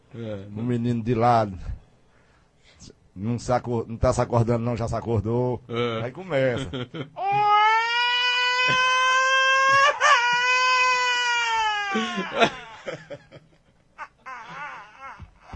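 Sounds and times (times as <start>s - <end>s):
speech: 0.1s - 1.8s, 2.8s - 7.5s, 11.9s - 13.5s
voice imitating a child crying with wails and sobs: 7.2s - 12.7s, 14.0s - 15.5s
laughter: 8.6s - 10.8s, 11.9s - 15.2s.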